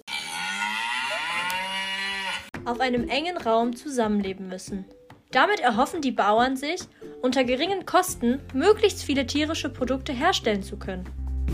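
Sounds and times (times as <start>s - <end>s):
cow mooing: 0.0s - 2.5s
speech: 2.6s - 11.5s.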